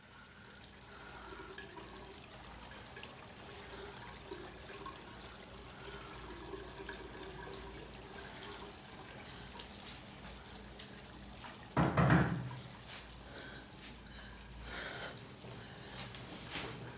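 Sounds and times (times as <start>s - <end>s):
tap water running into a sink: 0.0s - 13.0s
man washing his face: 0.0s - 16.9s.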